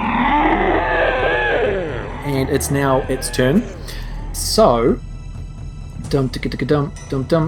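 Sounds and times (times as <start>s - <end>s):
monster-like roar: 0.0s - 4.6s
speech: 2.4s - 5.1s, 6.1s - 7.4s.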